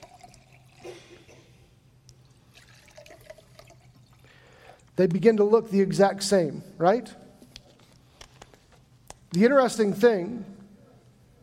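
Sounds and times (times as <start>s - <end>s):
water pouring into glasses: 0.0s - 1.4s, 2.2s - 4.9s
speech: 5.0s - 7.2s, 9.4s - 10.6s.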